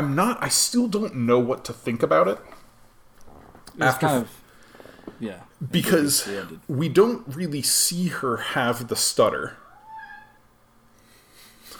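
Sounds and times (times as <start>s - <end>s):
speech: 0.0s - 2.6s, 3.8s - 4.4s, 5.2s - 9.6s
pet cat yowling: 9.6s - 10.4s.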